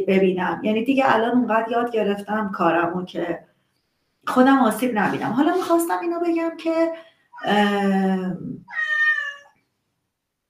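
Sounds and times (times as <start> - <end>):
speech: 0.0 - 3.5, 4.2 - 8.9
cat meowing: 8.6 - 9.6.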